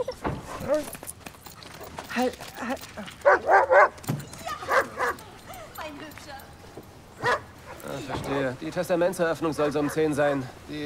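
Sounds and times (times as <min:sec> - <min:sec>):
speech: 0:00.7 - 0:01.1, 0:02.2 - 0:04.2, 0:07.9 - 0:10.8
dog barking: 0:03.2 - 0:04.0, 0:04.7 - 0:05.2, 0:07.2 - 0:07.9, 0:09.6 - 0:10.6
dog yelping: 0:03.2 - 0:05.7, 0:07.2 - 0:07.9, 0:09.6 - 0:10.5.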